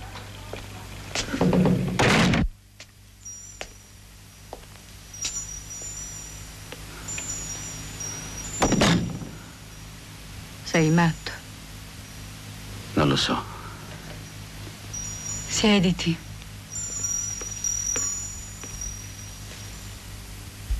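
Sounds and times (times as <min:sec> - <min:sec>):
speech: 0:01.2 - 0:01.8, 0:10.8 - 0:11.4, 0:13.1 - 0:13.5, 0:15.6 - 0:16.2
door at a main entrance thumping: 0:01.4 - 0:02.5.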